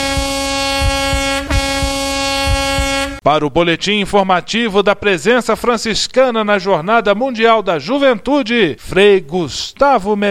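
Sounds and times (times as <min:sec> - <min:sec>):
low rhythmic thumping: 0:00.0 - 0:03.2
popemobile horn blaring in a long steady tone: 0:00.0 - 0:03.2
speech: 0:03.3 - 0:10.2.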